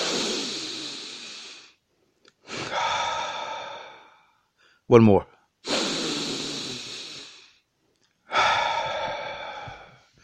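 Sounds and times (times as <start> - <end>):
person taking a deep breath: 0.0 - 1.8, 2.4 - 4.9, 5.7 - 10.2
speech: 4.9 - 5.3.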